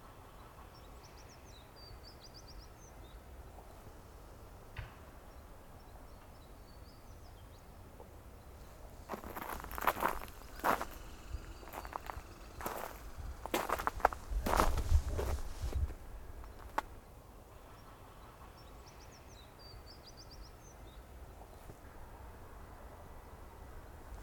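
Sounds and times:
crunching footsteps or handling noises: 9.0 - 16.9
American tree sparrow song and calls: 9.1 - 15.4.

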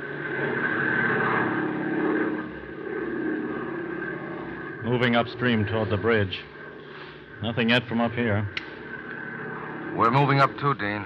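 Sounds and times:
propeller airplane droning overhead above a river at night: 0.0 - 11.0
speech: 4.9 - 6.6, 7.4 - 8.6, 10.0 - 11.0.

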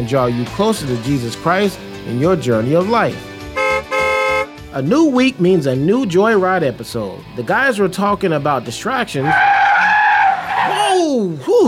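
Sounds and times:
speech: 0.0 - 3.3, 4.7 - 9.5, 11.1 - 11.6
car tires skidding: 9.1 - 11.0.

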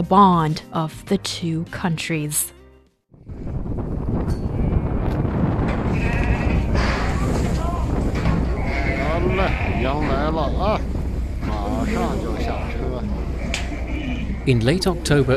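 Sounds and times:
speech: 0.0 - 2.6, 9.4 - 11.0, 11.8 - 13.2, 14.4 - 15.3
steady wind rumble below minus 20 °C: 3.1 - 15.3
large flock of sheep from Mongolia bleating in Erenhot North China: 5.9 - 7.6, 8.2 - 10.6, 11.5 - 15.3.

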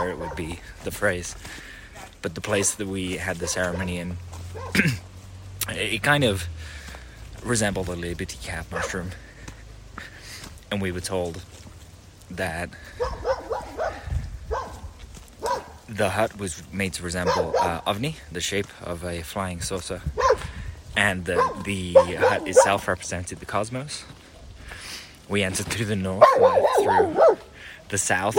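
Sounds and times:
dog barking: 0.0 - 0.6, 3.4 - 4.8, 8.7 - 9.1, 12.9 - 14.8, 15.4 - 15.8, 17.2 - 17.8, 20.2 - 20.5, 21.3 - 22.9, 26.2 - 27.5
speech: 0.0 - 6.8, 7.4 - 9.2, 10.7 - 11.6, 12.3 - 13.3, 15.9 - 20.4, 21.0 - 24.2, 25.3 - 27.3, 27.9 - 28.3.

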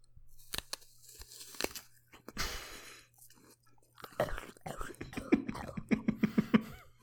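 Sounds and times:
vocal imitation of crunching into an apple: 0.5 - 6.0.

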